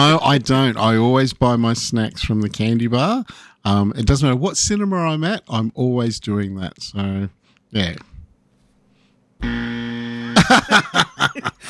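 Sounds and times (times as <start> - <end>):
speech: 0.0 - 8.1, 9.4 - 9.8, 10.4 - 11.6
flat electronic buzzer: 9.4 - 10.5
people laughing: 10.2 - 11.6.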